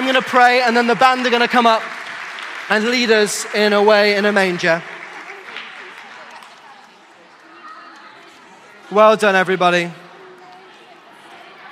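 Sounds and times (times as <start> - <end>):
audience applause from a sizable standing audience at a Christmas service: 0.0 - 6.8
speech: 0.1 - 2.0, 2.7 - 4.9, 8.9 - 10.0
crowd murmur: 2.6 - 11.6.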